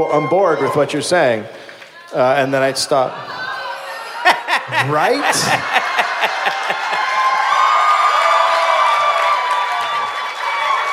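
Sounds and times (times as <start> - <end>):
speech: 0.0 - 3.4, 4.7 - 7.1
live crowd yelling and cheering: 0.0 - 10.9
people clapping: 1.5 - 2.2, 4.4 - 10.9
laughter: 3.0 - 7.7.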